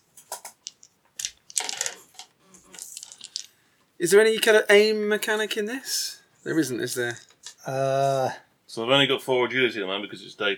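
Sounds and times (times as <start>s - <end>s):
several dice rolling on a hard surface: 0.2s - 3.6s
speech: 4.0s - 10.5s.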